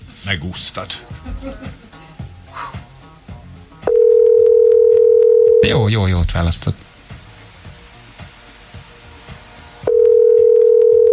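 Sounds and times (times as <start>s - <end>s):
speech: 0.3s - 1.8s, 5.6s - 6.9s
telephone ringing tone while waiting for pickup: 3.9s - 5.7s, 9.9s - 11.1s.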